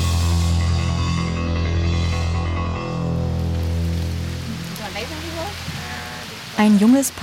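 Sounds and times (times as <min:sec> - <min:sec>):
low droning rumble of moving water or engine: 0:00.2 - 0:06.6
light rain falling by a river: 0:03.0 - 0:07.2
speech: 0:06.6 - 0:07.2.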